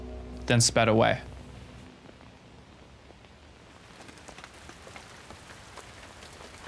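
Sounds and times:
steady rain pouring down: 0.4s - 6.6s
speech: 0.5s - 1.3s
rain drops pattering on a hard surface: 3.6s - 6.6s.

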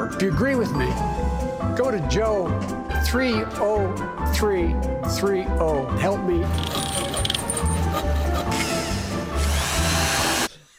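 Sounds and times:
speech: 0.1s - 6.9s
power drill whirring: 6.6s - 10.6s.

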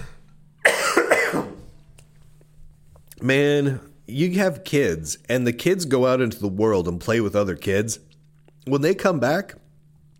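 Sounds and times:
quiet room noise: 0.0s - 10.1s
harsh cough: 0.6s - 1.7s
speech: 3.2s - 8.1s, 8.7s - 9.6s.

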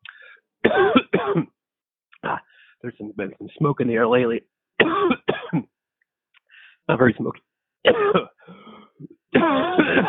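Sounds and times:
person coughing: 0.6s - 1.6s, 2.2s - 2.5s, 4.8s - 5.7s, 7.9s - 8.5s, 9.3s - 10.0s
speech: 2.8s - 5.7s, 6.9s - 8.2s.

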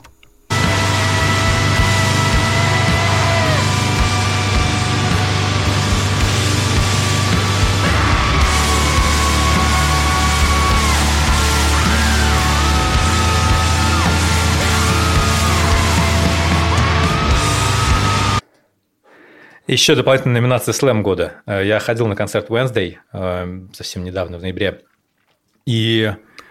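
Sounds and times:
loud dense wall of distorted guitars: 0.0s - 18.4s
strained wavering vocal screaming in a song: 0.5s - 18.4s
speech: 19.7s - 24.9s, 25.6s - 26.3s.

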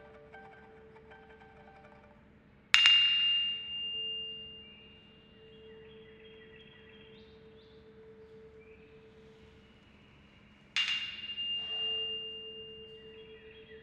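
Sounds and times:
steady lower pure tone of a tuning fork: 0.0s - 2.8s, 3.4s - 13.8s
wine glasses struck ringing in a kitchen: 2.8s - 5.6s, 10.8s - 13.8s.

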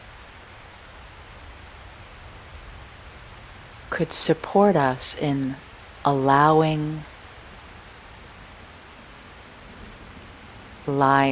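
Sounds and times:
warm rain falling in a storm: 0.0s - 11.3s
speech: 3.9s - 7.1s, 10.9s - 11.3s.

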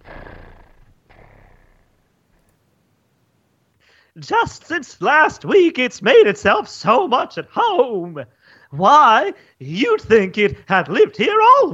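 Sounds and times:
domestic cat purring: 0.0s - 2.5s
speech: 4.2s - 11.7s.

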